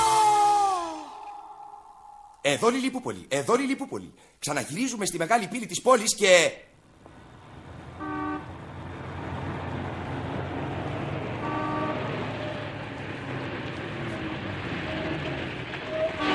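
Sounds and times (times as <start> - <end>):
speech: 2.4 - 6.8
tour coach engine rumbling: 6.8 - 16.3
traffic noise: 6.8 - 16.3
tour coach horn honking in short tonal blasts: 8.0 - 8.6, 11.4 - 12.6, 16.1 - 16.3.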